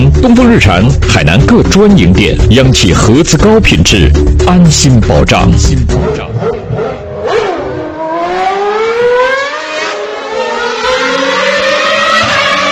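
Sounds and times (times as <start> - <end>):
speech: 0.2 - 6.6
car engine revving as the car accelerates away: 5.6 - 12.6.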